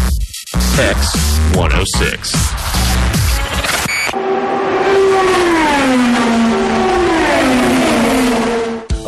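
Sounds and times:
speech: 0.8s - 3.8s
race car engines roaring and revving along a track: 4.1s - 8.9s.

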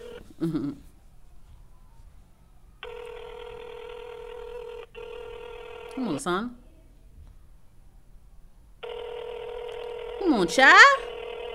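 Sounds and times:
steady electronic phone line ringing tone: 0.0s - 0.3s, 2.8s - 6.3s, 8.8s - 11.5s
speech: 0.4s - 0.9s, 6.0s - 6.6s, 10.4s - 11.1s.

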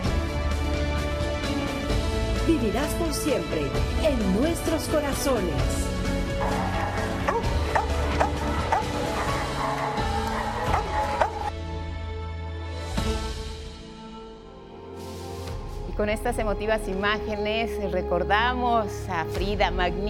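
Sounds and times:
steady tonal background: 0.0s - 20.0s
speech: 2.5s - 6.8s, 16.0s - 20.0s
dog barking and whimpering: 6.4s - 11.5s.

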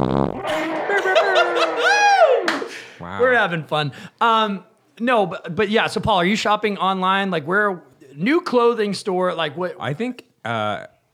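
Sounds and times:
short buzzy fart sound effect: 0.0s - 0.5s
laughter: 0.4s - 3.4s
speech: 3.4s - 10.9s.

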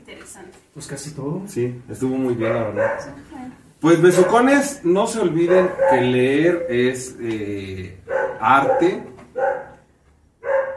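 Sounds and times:
speech: 0.4s - 9.1s
pet dog barking shut away: 2.4s - 3.2s, 4.1s - 4.8s, 5.4s - 6.9s, 8.1s - 9.8s, 10.4s - 10.7s.

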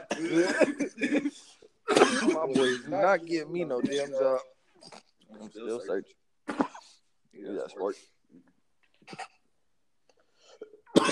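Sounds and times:
person coughing: 0.0s - 3.0s, 3.8s - 4.2s, 6.4s - 7.0s, 9.1s - 9.4s, 10.9s - 11.1s
speech: 0.2s - 1.5s, 2.5s - 6.6s, 7.4s - 8.5s, 9.1s - 9.3s.

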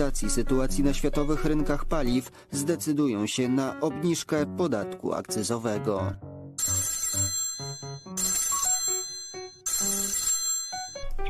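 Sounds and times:
speech: 0.0s - 6.8s
phone ringtone with bright electronic melody: 6.6s - 11.2s.

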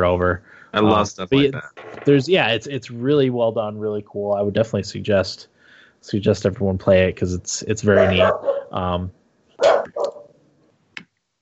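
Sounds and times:
speech: 0.0s - 10.2s
dog barking: 7.9s - 8.8s, 9.6s - 10.3s.

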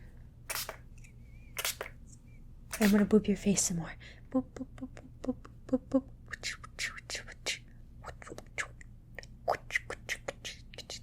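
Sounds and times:
spray bottle misting cool water onto a face: 0.5s - 0.8s, 1.6s - 2.0s, 2.7s - 3.1s
speech: 2.8s - 7.3s.

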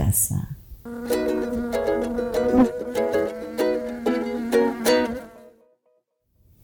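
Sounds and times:
speech: 0.1s - 2.8s
bee buzzing in flight: 0.9s - 5.6s.

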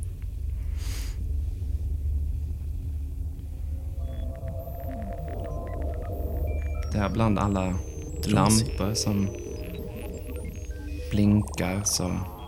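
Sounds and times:
dense steady low machine hum in a server room: 0.0s - 12.4s
faint electronic beeps and warbling tones: 2.8s - 12.4s
speech: 7.0s - 9.5s, 11.1s - 12.4s.

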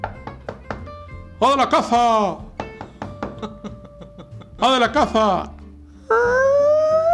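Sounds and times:
sharp knocks on a door: 0.0s - 0.9s, 2.6s - 3.6s
speech: 1.4s - 2.5s, 3.4s - 3.8s, 4.6s - 6.5s
laughter: 3.3s - 5.3s.

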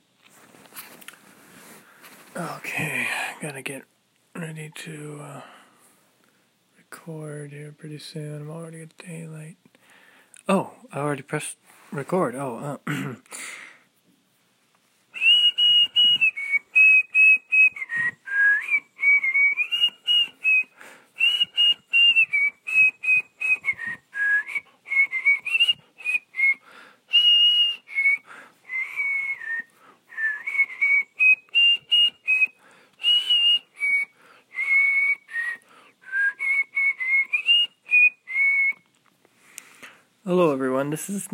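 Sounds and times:
speech: 2.4s - 5.6s, 7.0s - 9.7s, 10.5s - 13.4s, 41.0s - 41.3s
person whistling a melody: 15.2s - 38.9s.

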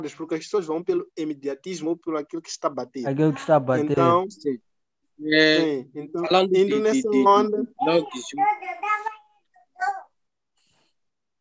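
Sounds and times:
speech: 0.0s - 8.9s
baby babbling and cooing: 6.8s - 10.1s.

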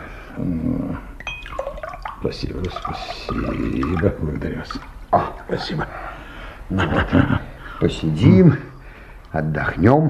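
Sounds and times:
beer being poured into a glass for a guest: 1.2s - 5.0s
speech: 2.2s - 6.0s, 6.7s - 8.7s, 9.3s - 10.0s
laughter: 5.2s - 7.6s.

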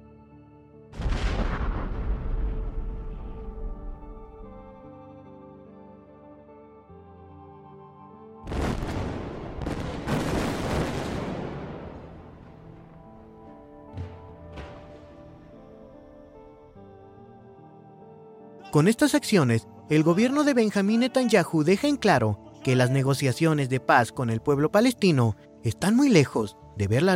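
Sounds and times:
loud airstrike explosions: 1.0s - 3.5s, 8.5s - 13.4s
speech: 18.8s - 27.1s.

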